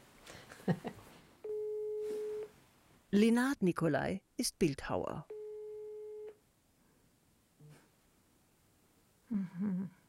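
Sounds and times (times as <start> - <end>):
speech: 0.7 - 0.9, 3.1 - 5.3
telephone ringing tone while a call is placed: 1.4 - 2.5, 5.3 - 6.4.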